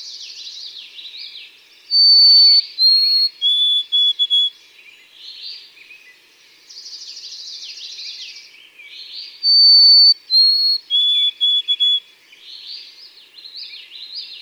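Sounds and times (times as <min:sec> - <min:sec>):
buzzy bird trill: 0:01.9 - 0:04.4, 0:09.4 - 0:12.0
white-throated sparrow singing clear high whistles: 0:01.9 - 0:06.2, 0:06.8 - 0:14.4.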